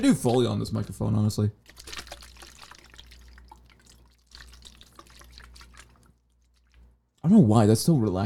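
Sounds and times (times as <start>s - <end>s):
speech: 0.0s - 1.9s, 7.3s - 8.2s
low steady hum: 0.0s - 8.2s
water sloshing with wet splashes and drips: 1.6s - 7.2s.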